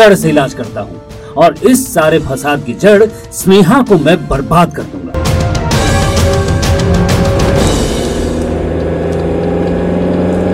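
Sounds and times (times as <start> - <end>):
speech: 0.0 - 5.2
car engine humming while the car is being driven: 6.2 - 10.5.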